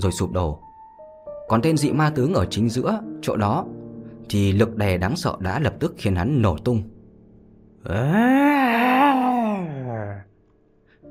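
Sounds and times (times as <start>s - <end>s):
speech: 0.0s - 0.7s, 1.5s - 6.9s, 7.8s - 8.6s
agonized wailing and moaning cry: 7.8s - 10.2s.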